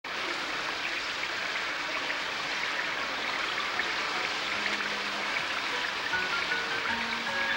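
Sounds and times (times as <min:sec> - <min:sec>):
rain falling: 0:00.1 - 0:07.5.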